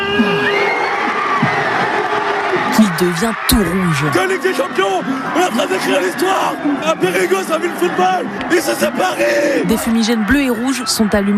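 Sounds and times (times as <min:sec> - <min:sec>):
football supporters cheering in city-centre streets after a title win: 0:00.0 - 0:11.3
shrill whoops and shouts: 0:00.0 - 0:11.3
speech: 0:03.0 - 0:11.3.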